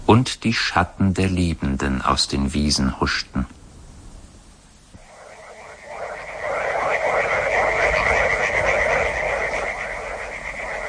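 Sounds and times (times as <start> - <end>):
speech: 0.1 - 3.6
dense chorus of frogs croaking in a backwater: 5.0 - 10.8.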